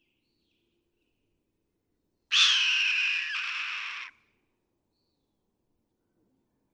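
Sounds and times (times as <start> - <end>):
red-tailed hawk screaming: 2.3 - 4.1.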